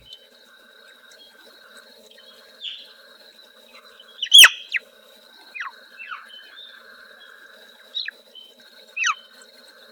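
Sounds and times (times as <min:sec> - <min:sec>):
Swinhoe's frog Rana swinhoana downward-sweeping chirping calls: 0:04.0 - 0:04.8, 0:05.5 - 0:08.2, 0:09.0 - 0:09.3.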